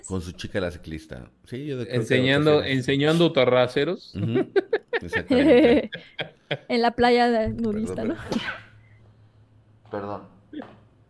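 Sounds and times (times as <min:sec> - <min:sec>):
speech: 0:00.0 - 0:08.6, 0:09.9 - 0:10.8
laughter: 0:04.2 - 0:06.7
person sneezing: 0:08.2 - 0:08.8.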